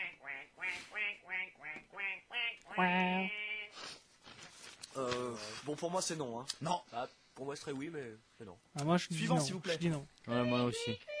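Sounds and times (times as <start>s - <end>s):
duck quacking: 0.0s - 3.7s
speech: 2.8s - 3.4s, 5.0s - 11.1s.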